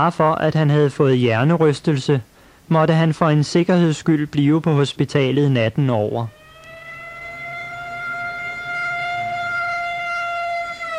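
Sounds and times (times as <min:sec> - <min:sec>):
speech: 0:00.0 - 0:06.4
ambulance siren wailing at a hospital in the evening: 0:06.2 - 0:10.9.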